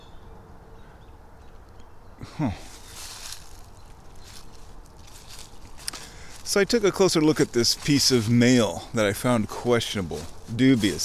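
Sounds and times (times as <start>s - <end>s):
birds over a golf course chattering and squawking: 2.0s - 11.0s
speech: 2.2s - 2.8s, 6.5s - 11.0s.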